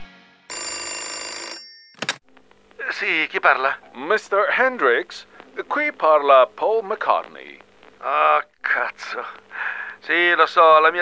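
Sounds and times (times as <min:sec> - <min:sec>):
telephone bell ringing: 0:00.5 - 0:02.2
speech: 0:02.9 - 0:10.9.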